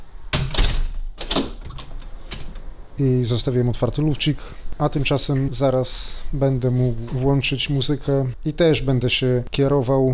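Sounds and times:
door being shut with sharp knocks and thuds: 0.3s - 2.7s
speech: 3.0s - 10.1s.

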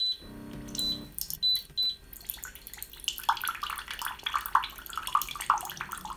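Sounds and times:
short electronic beeps from a hot water dispenser: 0.0s - 2.0s
boiling water pouring into a cup from a hot water dispenser: 2.1s - 6.1s.

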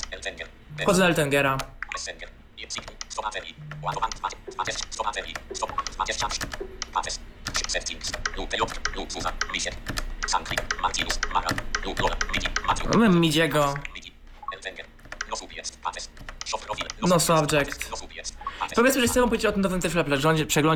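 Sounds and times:
low hum: 0.0s - 20.7s
speech: 0.2s - 14.0s, 14.6s - 20.7s
typing on a mechanical keyboard: 2.7s - 13.8s, 15.0s - 18.1s.

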